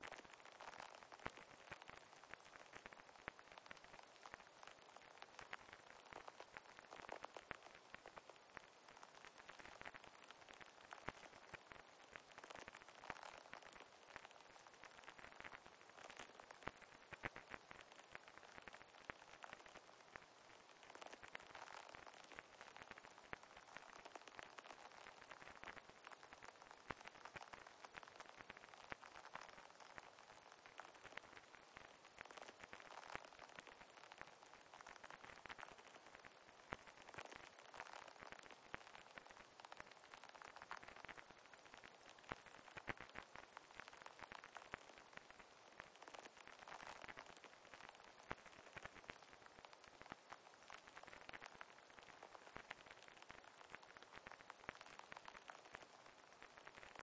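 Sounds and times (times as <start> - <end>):
very light rain: 0.0 - 57.0.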